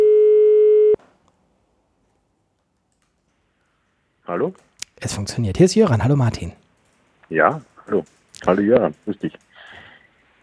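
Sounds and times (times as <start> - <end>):
ringback tone of an outgoing phone call: 0.0 - 1.0
speech: 4.4 - 6.6, 7.3 - 9.5.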